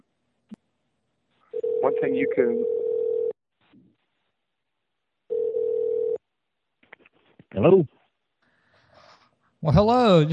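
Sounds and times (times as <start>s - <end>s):
buzzy telephone dial tone as a phone call is placed: 1.6s - 2.0s, 2.6s - 3.4s, 5.3s - 6.2s
speech: 2.0s - 2.8s, 7.6s - 8.0s, 9.6s - 10.3s.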